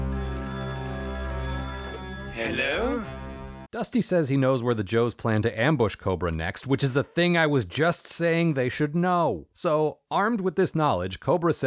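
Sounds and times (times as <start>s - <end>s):
electronic telephone ringing: 0.0s - 3.0s
speech: 2.4s - 11.6s.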